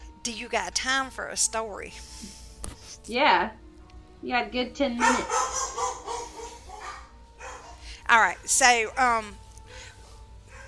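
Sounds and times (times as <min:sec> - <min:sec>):
low hum: 0:00.0 - 0:10.6
speech: 0:00.2 - 0:02.4, 0:03.0 - 0:03.6, 0:04.2 - 0:05.6, 0:08.1 - 0:09.4
dogs barking: 0:05.0 - 0:08.6, 0:10.0 - 0:10.6.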